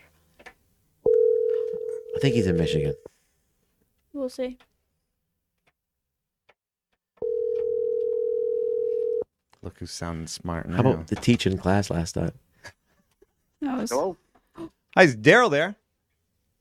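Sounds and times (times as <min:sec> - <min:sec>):
telephone ringback tone of an outgoing phone call: 0:01.1 - 0:03.1, 0:07.2 - 0:09.2
speech: 0:02.2 - 0:03.1, 0:04.2 - 0:04.7, 0:09.6 - 0:12.8, 0:13.7 - 0:15.8.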